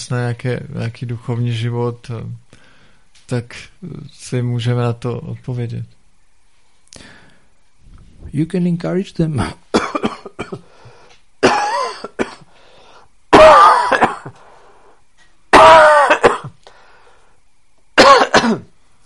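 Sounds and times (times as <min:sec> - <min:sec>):
speech: 0:00.1 - 0:02.6, 0:03.3 - 0:06.0, 0:08.2 - 0:10.7
harsh raspy coughing fit: 0:09.4 - 0:10.7, 0:11.4 - 0:12.5, 0:13.3 - 0:14.4, 0:15.5 - 0:16.6, 0:18.0 - 0:18.7.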